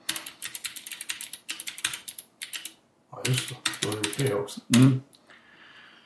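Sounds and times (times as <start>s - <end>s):
typing on a small computer keyboard with a custom layout: 0.0s - 4.4s
speech: 3.2s - 5.1s.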